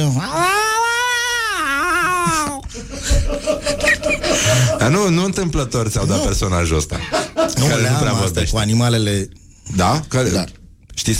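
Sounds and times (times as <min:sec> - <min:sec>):
person imitating a cat in heat caterwauling: 0:00.0 - 0:02.6
laughter: 0:02.2 - 0:05.2, 0:06.0 - 0:08.0
speech: 0:03.3 - 0:11.1.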